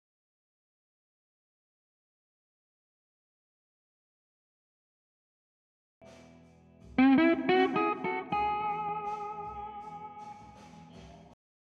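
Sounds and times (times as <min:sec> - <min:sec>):
funk guitar solo: 0:07.0 - 0:10.6.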